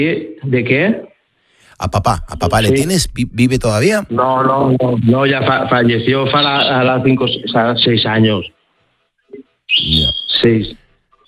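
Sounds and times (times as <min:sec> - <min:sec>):
speech: 0:00.0 - 0:01.1, 0:01.8 - 0:08.6, 0:09.3 - 0:10.8
short voiced vocal sounds: 0:01.6 - 0:03.8
small birds chirping: 0:09.7 - 0:10.5.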